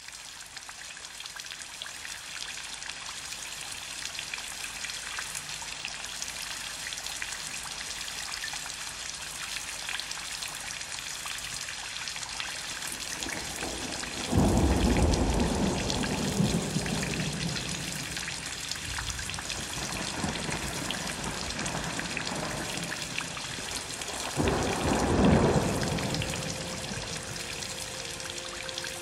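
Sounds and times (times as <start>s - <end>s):
rain: 0.0s - 29.0s.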